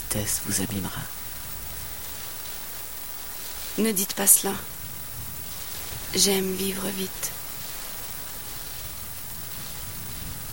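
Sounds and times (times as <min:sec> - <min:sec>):
steady rain: 0:00.0 - 0:10.5
speech: 0:00.1 - 0:01.3, 0:03.8 - 0:04.8, 0:06.1 - 0:07.4.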